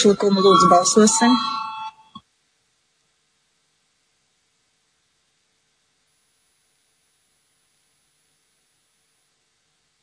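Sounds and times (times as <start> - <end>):
speech: 0.0 - 1.6
short electronic voting call bell chime with two tonal beeps: 0.0 - 2.1
faint hum: 0.0 - 10.0.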